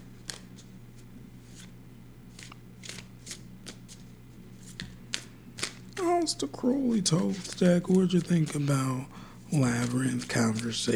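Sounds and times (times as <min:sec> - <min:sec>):
tarot card being drawn and flipped: 0:02.4 - 0:10.9
speech: 0:06.2 - 0:10.9.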